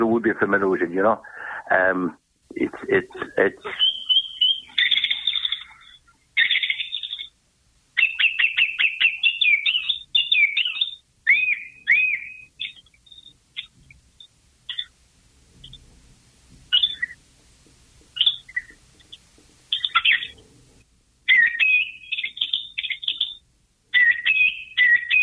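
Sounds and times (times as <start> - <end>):
speech: 0.0 - 3.9
song thrush singing repeated phrases: 2.5 - 7.4, 8.0 - 15.0, 15.6 - 15.8, 16.7 - 17.2, 18.1 - 20.4, 21.3 - 25.2.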